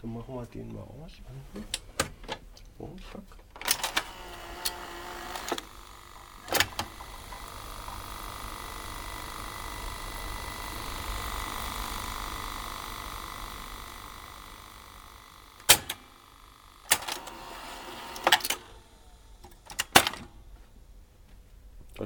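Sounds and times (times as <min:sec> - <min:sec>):
speech: 0:00.0 - 0:02.1, 0:02.8 - 0:03.5
video cassette recorder mechanism clunks and clicks: 0:01.7 - 0:02.5, 0:03.5 - 0:09.3, 0:11.2 - 0:18.8, 0:19.4 - 0:20.4
video cassette ejecting with sharp clacks: 0:03.5 - 0:18.8, 0:19.4 - 0:20.4
video cassette recorder motor whirring: 0:03.6 - 0:20.1.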